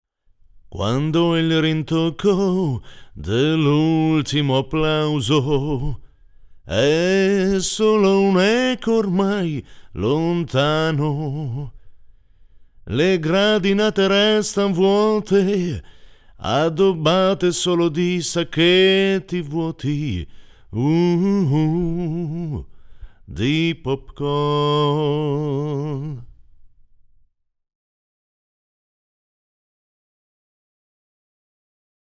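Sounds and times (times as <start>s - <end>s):
person singing through a valve preamp: 0.8s - 6.0s, 6.7s - 11.8s, 12.9s - 22.7s, 23.3s - 26.3s.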